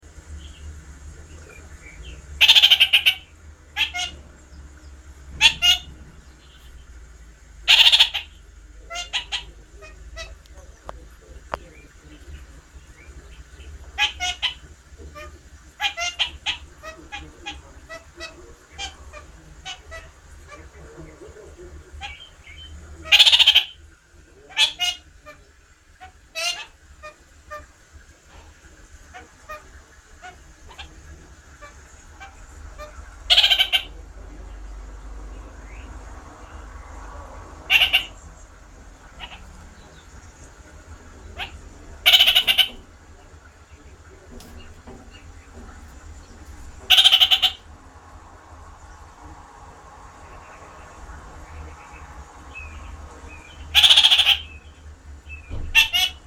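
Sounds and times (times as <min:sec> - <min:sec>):
kakariki parakeet calling: 0:00.0 - 0:56.2.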